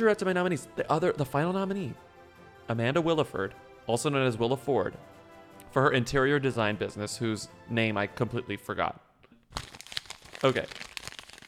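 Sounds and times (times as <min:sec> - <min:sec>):
speech: 0:00.0 - 0:02.1, 0:02.7 - 0:05.1, 0:05.7 - 0:09.7, 0:10.4 - 0:10.8
crumpled paper sheet being unfolded and smoothed out: 0:09.5 - 0:11.4.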